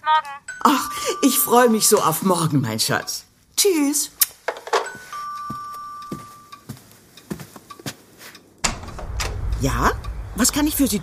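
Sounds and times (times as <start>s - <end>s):
speech: 0.1s - 4.2s, 9.6s - 11.0s
two-tone doorbell chime at the door: 0.5s - 3.2s, 4.8s - 6.8s
soft clunks and clicks of movement: 8.6s - 10.2s.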